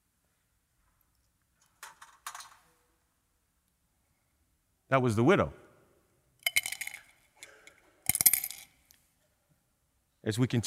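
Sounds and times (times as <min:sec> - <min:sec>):
speech: 0:04.9 - 0:05.6, 0:10.3 - 0:10.6
small coins dropping and clinking: 0:06.4 - 0:08.9.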